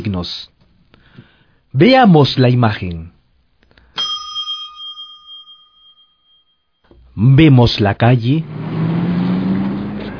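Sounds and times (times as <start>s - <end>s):
speech: 0.0s - 0.6s, 1.2s - 3.2s, 7.2s - 8.6s
car engine rumbling on a street: 8.4s - 10.1s.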